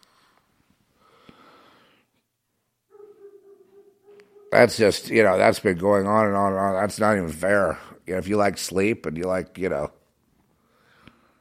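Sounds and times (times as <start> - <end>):
dog barking in drawn-out wheezy howl-like bursts: 2.9 - 4.8
speech: 4.6 - 10.0.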